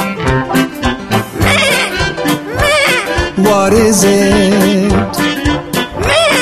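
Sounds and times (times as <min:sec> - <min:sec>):
steady musical backing: 0:00.0 - 0:06.4
goat bleating: 0:01.4 - 0:03.5
speech: 0:03.5 - 0:05.3.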